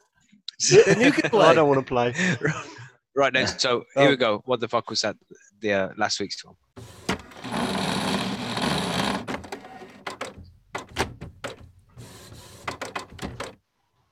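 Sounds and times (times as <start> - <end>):
laughter: 0.6 - 3.6
speech: 0.6 - 7.6
printer struggling to start with mechanical whir: 6.8 - 10.0.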